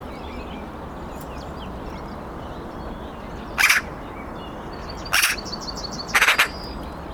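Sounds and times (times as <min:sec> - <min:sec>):
Eurasian magpie giving grating chack calls: 0:03.6 - 0:03.9, 0:05.1 - 0:05.5, 0:06.1 - 0:06.6.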